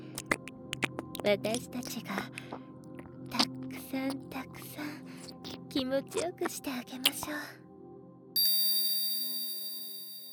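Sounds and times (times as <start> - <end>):
speech: 1.2 - 2.7, 3.3 - 5.0, 5.7 - 7.6
hypnosis bell ringing with a bright metallic tone: 8.4 - 10.3.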